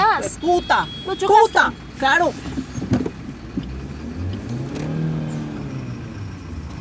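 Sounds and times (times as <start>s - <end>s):
speech: 0.5s - 2.6s
car engine revving before crashing into a bus: 2.0s - 6.7s.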